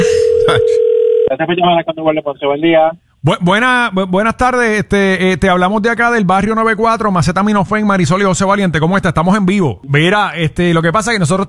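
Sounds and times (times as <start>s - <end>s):
telephone dial tone while placing a call: 0.1s - 1.3s
speech: 0.5s - 11.4s.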